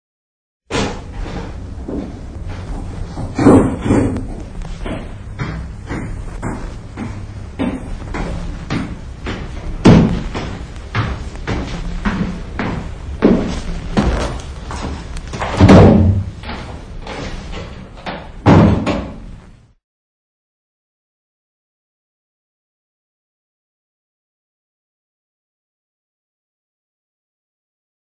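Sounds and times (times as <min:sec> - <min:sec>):
footsteps on stairs: 0:01.0 - 0:18.1.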